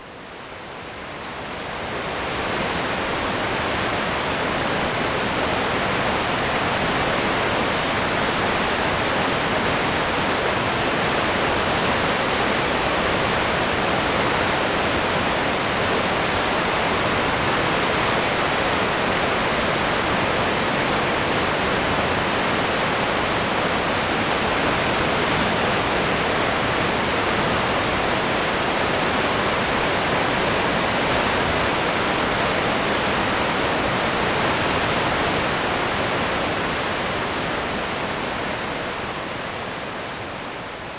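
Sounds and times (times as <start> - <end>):
river rushing through a narrow rocky gorge: 0.2 - 40.9.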